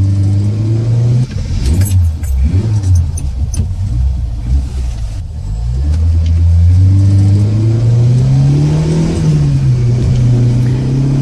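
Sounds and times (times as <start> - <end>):
car engine revving and accelerating during a chase on a road toward the coast: 0.0 - 11.2
light metallic jingle: 1.8 - 3.3.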